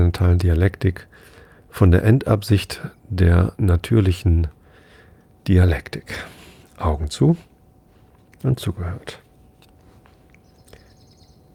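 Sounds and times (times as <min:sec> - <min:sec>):
quiet hum: 0:00.0 - 0:11.5
speech: 0:00.1 - 0:04.6, 0:05.4 - 0:07.5, 0:08.4 - 0:09.2
bird chirping as it flies past: 0:10.4 - 0:11.5.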